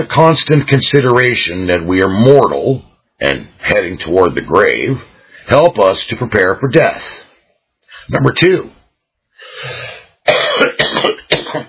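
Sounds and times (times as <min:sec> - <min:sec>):
speech: 0:00.0 - 0:07.2, 0:08.0 - 0:08.8
person coughing: 0:09.5 - 0:11.6
throat-clearing rasp: 0:09.7 - 0:11.6.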